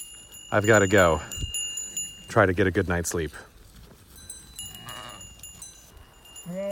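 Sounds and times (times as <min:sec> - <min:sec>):
outdoor noise: 0:00.0 - 0:06.7
speech: 0:00.5 - 0:01.4, 0:02.3 - 0:03.5
sheep bleating: 0:04.7 - 0:05.3, 0:06.4 - 0:06.7.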